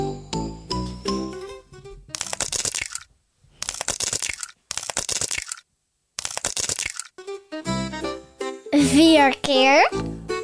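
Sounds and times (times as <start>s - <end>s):
eggshell cracking open: 2.2s - 5.6s, 6.2s - 7.1s
speech: 8.9s - 10.1s.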